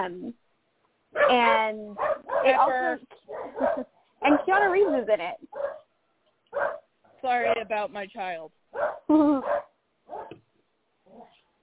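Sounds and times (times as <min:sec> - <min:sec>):
speech: 0:00.0 - 0:00.4, 0:01.1 - 0:05.7, 0:06.5 - 0:10.2
dog barking: 0:01.2 - 0:04.6, 0:05.5 - 0:05.9, 0:06.5 - 0:06.9, 0:08.7 - 0:10.4.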